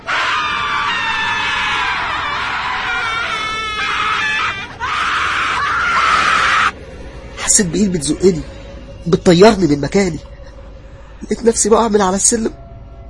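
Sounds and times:
terrible piercing scream: 0:00.0 - 0:06.8
speech: 0:07.6 - 0:10.3, 0:11.3 - 0:12.6.

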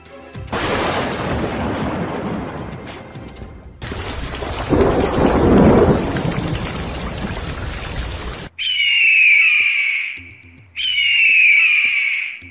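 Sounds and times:
thunder rumbling across the sky: 0:00.5 - 0:08.5
high tonal calls: 0:07.9 - 0:12.4.

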